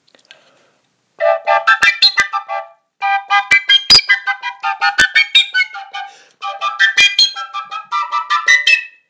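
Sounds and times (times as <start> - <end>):
spectrum of overtones on different fingering combinations: 1.2 - 9.0.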